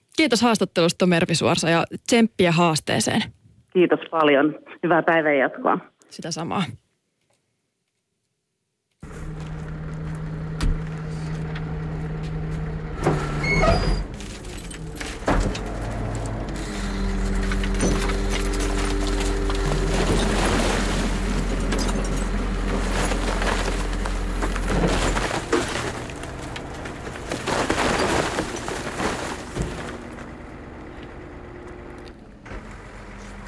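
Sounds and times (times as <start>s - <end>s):
speech: 0.2s - 6.8s
heavy garbage truck engine rumbling and idling: 9.0s - 33.4s
hydraulic whines: 9.0s - 33.4s.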